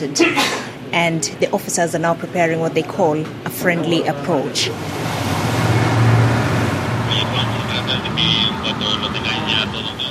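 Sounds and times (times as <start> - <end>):
speech: 0.0 - 5.4, 8.0 - 9.8
low engine rumble of officers' boats motoring across the sea: 4.6 - 10.1
rushing water: 4.7 - 8.0
faint high whine: 7.1 - 10.1.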